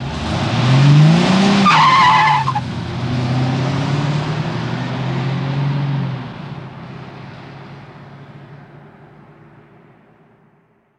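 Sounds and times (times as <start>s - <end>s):
Cadillac engine revving high: 0.0s - 6.1s.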